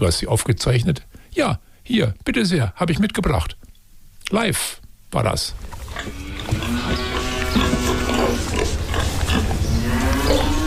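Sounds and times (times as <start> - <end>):
speech: 0.0 - 3.7, 4.3 - 7.0
steady barnyard rumble: 5.5 - 10.6
cows mooing: 5.9 - 10.6.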